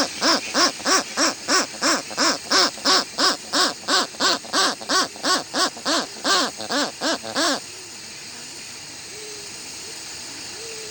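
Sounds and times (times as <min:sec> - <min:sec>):
Westland petrel rhythmic harsh rising-and-falling song: 0:00.0 - 0:07.7.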